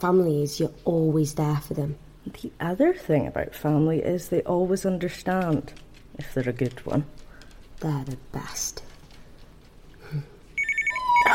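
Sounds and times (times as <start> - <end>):
speech: 0.0 - 7.2, 7.8 - 8.9, 10.1 - 10.3
telephone ringing with an electronic trill: 10.6 - 11.3.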